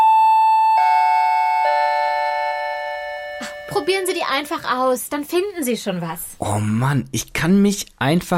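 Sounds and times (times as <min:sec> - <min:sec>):
three-note descending doorbell chime: 0:00.0 - 0:04.5
speech: 0:03.8 - 0:08.3.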